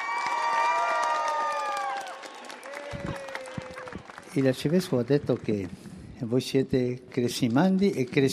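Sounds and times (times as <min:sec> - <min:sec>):
young people cheering with high-pitched shouts and whoops: 0:00.0 - 0:04.3
crowd of youths clapping: 0:00.0 - 0:08.3
speech: 0:04.4 - 0:08.3.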